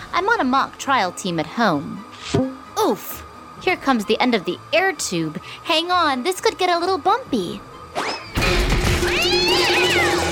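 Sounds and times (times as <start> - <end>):
speech: 0.2 - 8.2
cat yowling meow: 9.0 - 10.2.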